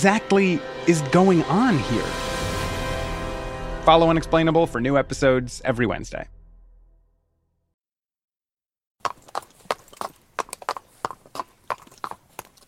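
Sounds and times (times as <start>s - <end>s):
speech: 0.0s - 2.3s, 3.9s - 6.4s
low rumble: 0.8s - 7.4s
black Tennessee walking horse stallion hooves clip-clopping: 9.0s - 12.6s.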